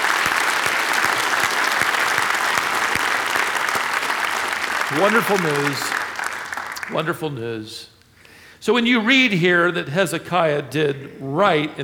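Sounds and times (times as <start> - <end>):
large crowd applauding: 0.0 - 7.2
speech: 4.9 - 5.9, 6.9 - 8.0, 8.6 - 11.8.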